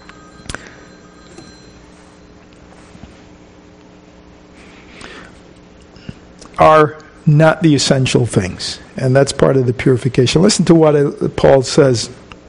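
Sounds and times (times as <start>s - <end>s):
mobile phone ringing with a thin electronic tone: 0.0s - 2.9s
speech: 6.6s - 12.2s.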